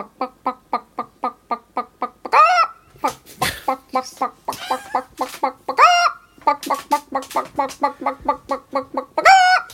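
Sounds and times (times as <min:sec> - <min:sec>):
chicken clucking: 0:00.0 - 0:09.7
chicken squawking: 0:02.3 - 0:09.7.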